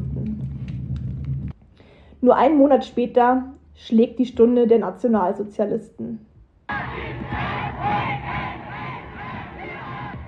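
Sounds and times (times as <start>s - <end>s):
speech: 2.2s - 6.3s
large crowd cheering and shouting at torchlight parades in German cities: 6.7s - 10.2s.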